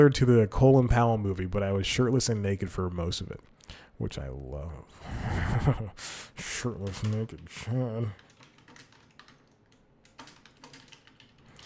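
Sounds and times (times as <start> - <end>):
speech: 0.0 - 8.2
typing on a computer keyboard: 6.8 - 7.5, 8.2 - 11.6.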